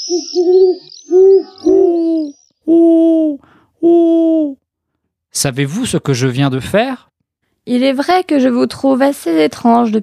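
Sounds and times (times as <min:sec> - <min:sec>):
person whistling an owl call to attract birds: 0:00.0 - 0:04.6
speech: 0:05.4 - 0:10.0.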